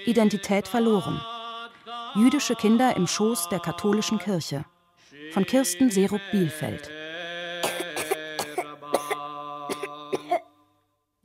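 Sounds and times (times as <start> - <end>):
speech: 0.0 - 1.3, 2.1 - 4.7, 5.3 - 7.0
small child coughing: 7.6 - 10.5.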